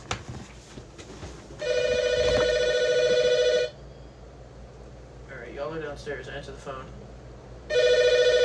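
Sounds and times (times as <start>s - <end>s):
low hum: 0.0s - 8.4s
electronic telephone ringing: 1.6s - 3.8s, 7.7s - 8.4s.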